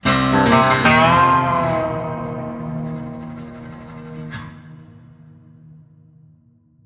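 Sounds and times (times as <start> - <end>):
medium win riff: 0.0 - 4.5.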